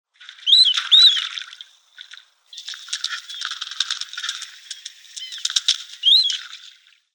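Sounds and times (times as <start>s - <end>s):
marbled duck Marmaronetta angustirostris calling: 0.4s - 1.4s, 4.4s - 6.6s.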